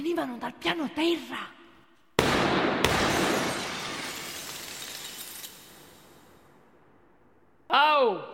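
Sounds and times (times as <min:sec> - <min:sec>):
speech: 0:00.0 - 0:01.6
gunshots hitting a chandelier and a window: 0:02.2 - 0:06.2
breaking glass of a chandelier and a window: 0:02.8 - 0:06.4.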